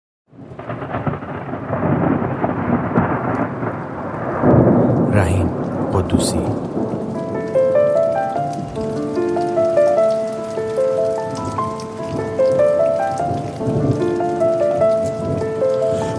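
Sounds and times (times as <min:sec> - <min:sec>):
rain pattering on a hard surface: 0:00.3 - 0:16.1
speech: 0:06.1 - 0:06.7
sustained tonal notes like a soft melody: 0:06.3 - 0:16.1.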